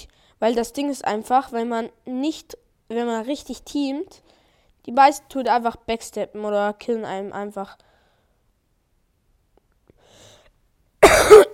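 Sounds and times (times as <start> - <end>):
speech: 0.0 - 7.9
person coughing: 11.0 - 11.5.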